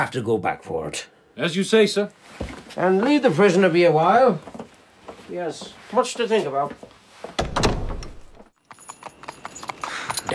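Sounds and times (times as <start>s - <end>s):
speech: 0.0s - 4.6s, 5.3s - 7.5s
horses' hooves clip-clopping on a road as riders go along: 8.6s - 10.3s.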